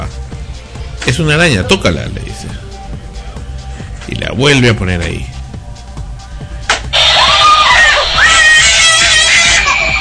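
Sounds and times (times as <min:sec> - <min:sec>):
speech: 0:01.0 - 0:02.6, 0:04.1 - 0:05.3
young girl screaming in fear: 0:07.2 - 0:09.9.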